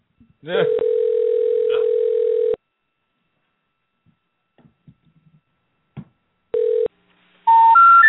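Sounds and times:
telephone dial tone on an office line: 0.7 - 2.6, 6.6 - 6.9.

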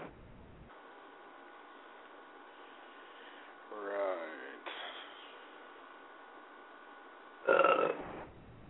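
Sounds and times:
quiet room noise: 0.0 - 8.6
loud drawn-out croaky burp: 7.4 - 8.1.

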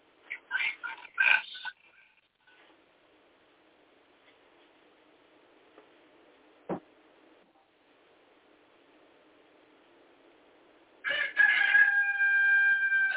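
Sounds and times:
single brief knock: 6.7 - 6.9
rooster crowing: 11.0 - 13.1.

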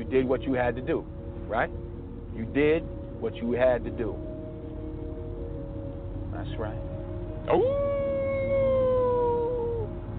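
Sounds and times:
speech: 0.1 - 4.3, 6.4 - 8.1
person imitating a wolf howl: 7.5 - 10.1.

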